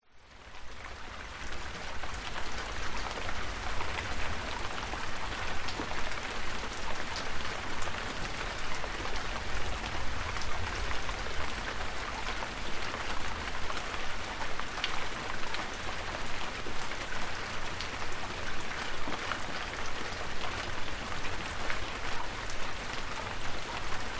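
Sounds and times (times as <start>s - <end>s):
countryside rain: 0.0s - 24.1s.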